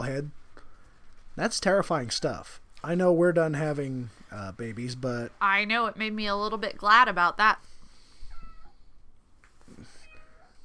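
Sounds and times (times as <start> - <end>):
speech: 0.0 - 0.4, 1.4 - 7.7
low steady hum: 0.0 - 10.6
cat meowing: 8.2 - 8.9, 9.9 - 10.6.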